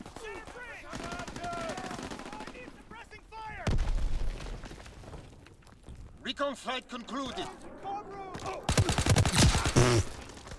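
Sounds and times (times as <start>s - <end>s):
video game rapid weapon bursts: 0.0s - 3.1s, 8.6s - 10.5s
speech: 6.4s - 8.6s.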